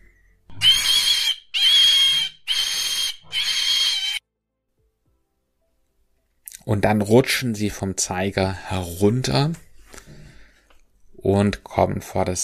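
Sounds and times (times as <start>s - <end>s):
loud shrill squeals: 0.5s - 4.2s
speech: 6.7s - 9.7s, 11.2s - 12.4s.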